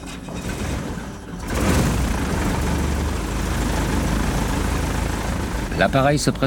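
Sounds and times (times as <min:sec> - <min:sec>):
two-engine aircraft engines starting up in Syria before daybreak: 0:01.4 - 0:06.4
speech: 0:05.8 - 0:06.4.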